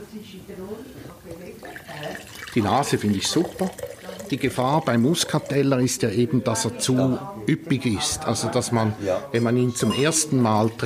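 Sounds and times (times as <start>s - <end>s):
speech: 0.1s - 10.8s
wine being poured into a glass: 1.6s - 6.7s.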